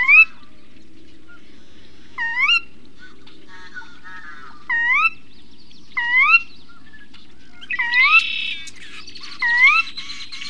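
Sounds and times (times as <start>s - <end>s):
scratchy chatter from other birds: 0.7s - 4.9s, 7.0s - 10.4s.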